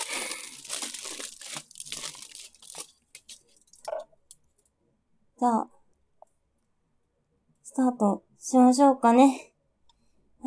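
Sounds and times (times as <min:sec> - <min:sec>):
aluminium foil crinkling and crackling: 0:00.0 - 0:04.0
speech: 0:05.4 - 0:05.8, 0:07.8 - 0:09.5.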